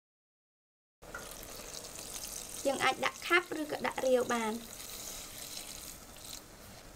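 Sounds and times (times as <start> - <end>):
water pouring into a cooking pot holding meat and a souring ingredient: 1.1 - 6.5
speech: 2.6 - 4.8.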